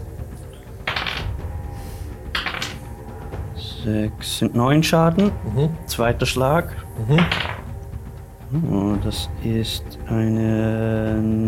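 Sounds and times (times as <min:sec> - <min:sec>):
dice clattering across a hard surface: 0:00.8 - 0:01.4, 0:02.3 - 0:02.8, 0:07.1 - 0:07.7
speech: 0:03.8 - 0:07.5, 0:08.5 - 0:11.4.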